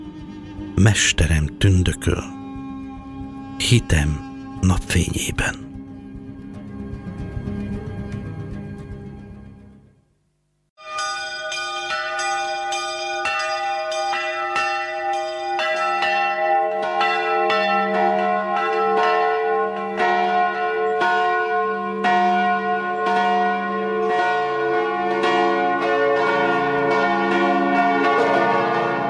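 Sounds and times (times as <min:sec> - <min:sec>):
speech: 0:00.8 - 0:02.4, 0:03.6 - 0:05.6
large church bells pealing: 0:11.0 - 0:29.0.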